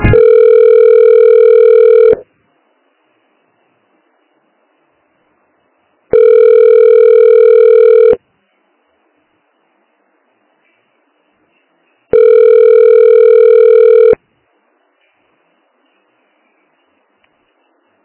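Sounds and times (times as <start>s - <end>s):
telephone ringback tone during call transfer to another extension: 0.1s - 2.2s, 6.1s - 8.2s, 12.1s - 14.2s.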